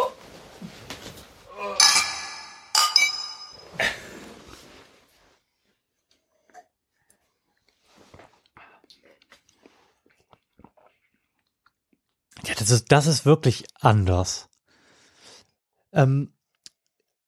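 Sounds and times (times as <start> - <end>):
beer glasses clinking in a toast at a craft beer tasting: 1.8 - 3.8
speech: 12.6 - 14.5, 16.0 - 16.4.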